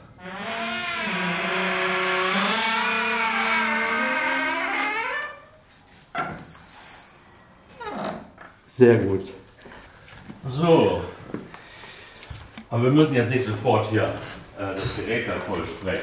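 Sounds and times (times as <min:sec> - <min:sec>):
squeaking bathroom door creaking open: 0:00.0 - 0:08.4
speech: 0:08.8 - 0:09.4, 0:10.5 - 0:11.1, 0:12.8 - 0:16.0.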